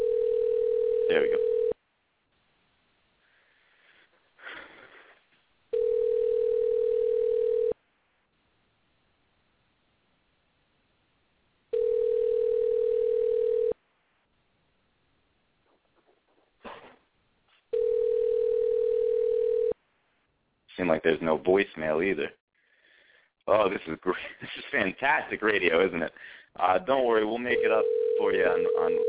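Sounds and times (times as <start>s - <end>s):
long steady telephone ringing tones through a switchboard: 0.0s - 1.8s, 5.7s - 7.8s, 11.7s - 13.8s, 17.7s - 19.8s, 27.5s - 29.0s
speech: 1.1s - 1.5s, 21.0s - 22.4s, 23.5s - 29.0s.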